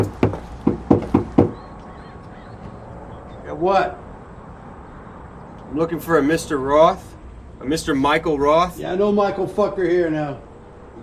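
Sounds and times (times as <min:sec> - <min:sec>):
knocking on an apartment door: 0:00.0 - 0:01.6
speech: 0:03.6 - 0:04.0, 0:05.7 - 0:11.0.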